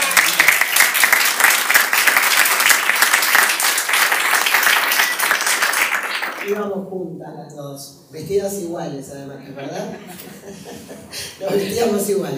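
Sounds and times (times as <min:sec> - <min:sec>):
crowd applause: 0:00.0 - 0:06.6
speech: 0:06.5 - 0:12.3
laughter: 0:09.5 - 0:12.0.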